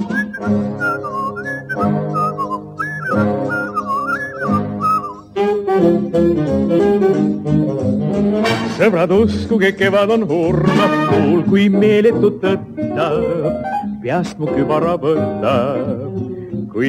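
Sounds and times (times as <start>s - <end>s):
person whistling a bouncy melody: 0.0s - 5.4s
instrumental backing music: 0.0s - 16.8s
speech: 0.5s - 0.7s, 8.8s - 16.8s.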